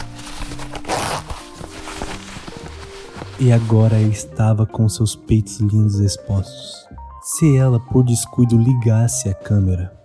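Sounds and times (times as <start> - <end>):
dress zipper being unzipped: 0.0 - 4.0
speech: 3.4 - 10.0.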